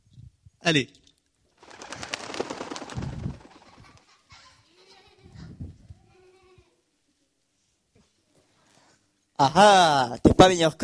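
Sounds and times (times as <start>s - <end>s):
speech: 0.6s - 1.0s, 9.4s - 10.8s
dove wing flaps as a dove is released: 1.6s - 4.2s.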